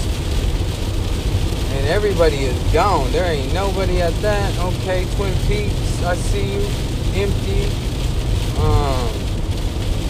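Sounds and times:
heavy rain pouring down: 0.0s - 10.0s
speech: 1.9s - 7.9s, 8.6s - 9.2s
faint harmonic voice-like tone: 8.6s - 9.2s.

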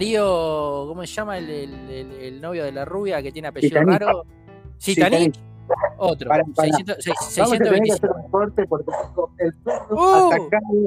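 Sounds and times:
speech: 0.0s - 10.8s
people talking loudly: 4.9s - 10.8s
dog barking at someone at the door: 5.7s - 6.0s, 8.8s - 10.0s.

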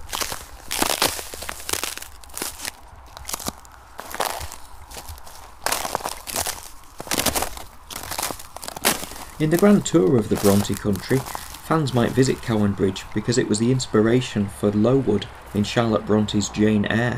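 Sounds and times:
footsteps crunching over frozen ice in a field after a cold night: 0.0s - 13.6s
speech: 9.4s - 17.1s.

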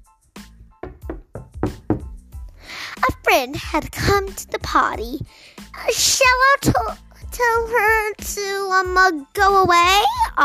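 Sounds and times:
firm knocks on a wooden door: 0.8s - 2.2s
speech: 3.3s - 10.4s.

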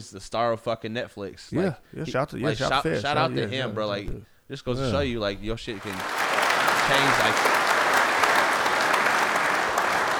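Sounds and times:
speech: 0.0s - 6.3s, 6.9s - 7.6s
applause from many clapping hands: 5.8s - 10.1s.

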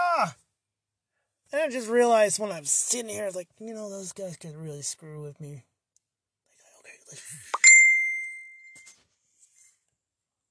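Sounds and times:
speech: 0.2s - 0.4s, 1.5s - 5.7s, 7.1s - 7.6s
electronic phone notification ding for a confirmation code: 7.6s - 8.9s.

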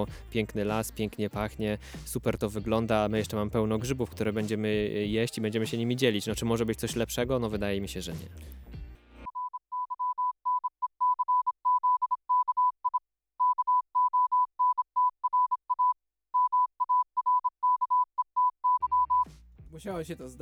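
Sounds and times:
speech: 0.0s - 8.7s, 19.9s - 20.4s
Morse code tone beeping: 9.3s - 19.2s.

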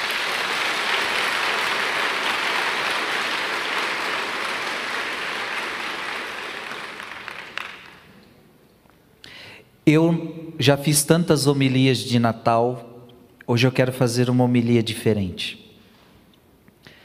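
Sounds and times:
large audience applauding: 0.0s - 8.2s
speech: 9.9s - 12.9s, 13.5s - 15.6s.

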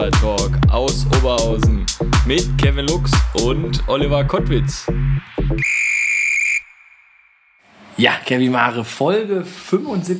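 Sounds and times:
short low thumps: 0.0s - 5.6s
speech: 0.0s - 5.8s, 8.0s - 10.1s
sharp referee-style whistle blast: 5.6s - 7.6s.

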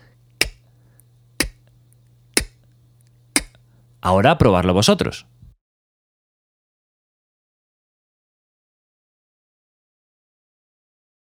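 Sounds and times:
beatbox K tongue clicks on the back palate imitating a snare drum: 3.4s - 3.6s
speech: 4.0s - 5.4s.

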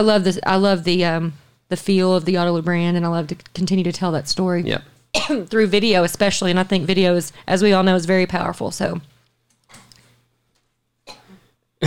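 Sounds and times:
speech: 0.0s - 9.1s
coughs or throat-clearing bursts: 5.2s - 5.6s, 11.1s - 11.8s.

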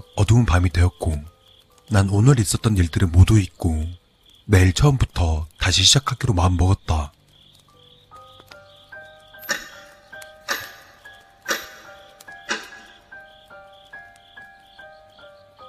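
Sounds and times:
speech: 0.2s - 1.3s, 1.9s - 7.2s
clock ticking: 9.4s - 13.4s.

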